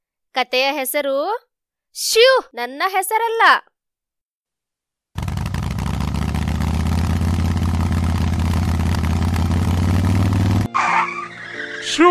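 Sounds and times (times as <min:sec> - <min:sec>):
speech: 0:00.4 - 0:03.7, 0:11.9 - 0:12.0
motorcycle engine: 0:05.2 - 0:10.7.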